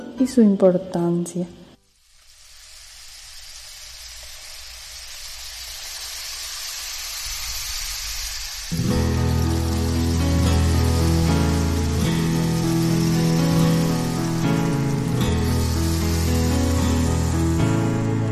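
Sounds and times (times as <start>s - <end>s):
speech: 0.2s - 1.6s
rain falling: 1.8s - 18.3s
water spraying: 1.8s - 18.3s
music: 8.7s - 18.3s.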